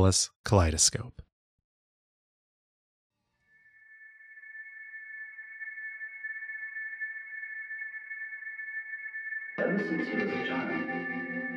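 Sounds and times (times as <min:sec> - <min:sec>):
speech: 0:00.0 - 0:01.2
high steady synth tone of a progressive rock intro: 0:03.4 - 0:11.5.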